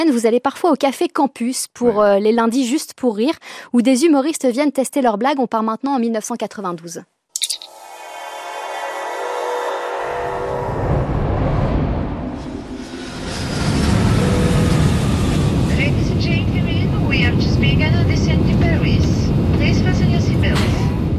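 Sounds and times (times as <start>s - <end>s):
speech: 0.0s - 7.2s
jet engines roaring in an aircraft cabin: 7.7s - 20.8s.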